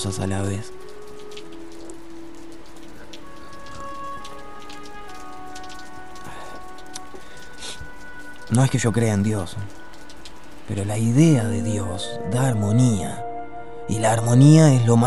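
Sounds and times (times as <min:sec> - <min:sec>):
speech: 0:00.0 - 0:00.8, 0:08.5 - 0:09.8, 0:10.7 - 0:13.2, 0:13.9 - 0:15.0
light steady drizzle pattering on a small path in front of a house: 0:00.0 - 0:11.8.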